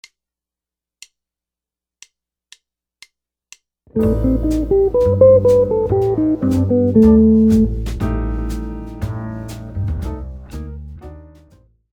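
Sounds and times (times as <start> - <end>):
guitar playing melodic minor licks: 3.9 - 8.0.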